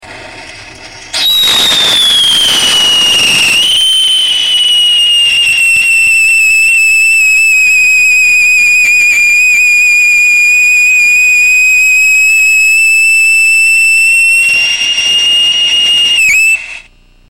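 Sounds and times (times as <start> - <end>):
whistling rockets with sodium salicylate and mineral oil: 0.1 - 16.9.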